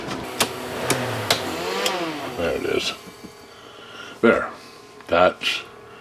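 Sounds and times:
air compressor pumping up a bus air seat: 0.1s - 3.6s
speech: 2.4s - 3.1s, 5.2s - 5.7s.

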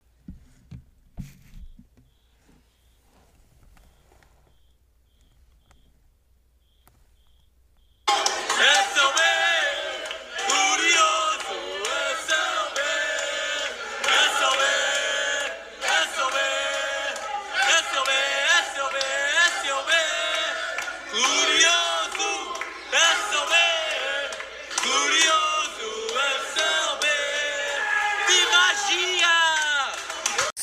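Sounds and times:
soccer fans whooping and shouting: 8.1s - 12.9s, 15.8s - 30.5s
packed room of soccer fans cheering after a goal: 8.1s - 30.6s.

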